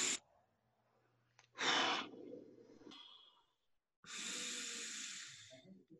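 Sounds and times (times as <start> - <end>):
slow deep breathing during a meditation breathing exercise: 1.5 - 3.4, 4.1 - 5.8.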